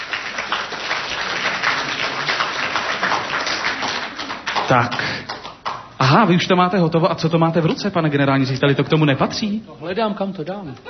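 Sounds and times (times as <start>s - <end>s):
audience applause: 0.0s - 5.9s
speech: 4.7s - 5.1s, 6.1s - 10.8s.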